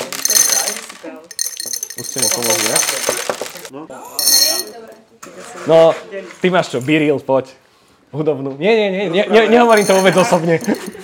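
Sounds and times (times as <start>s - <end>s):
small objects clattering and clinking as dropped into a glass: 0.0s - 5.0s, 9.7s - 11.0s
speech: 2.0s - 11.0s.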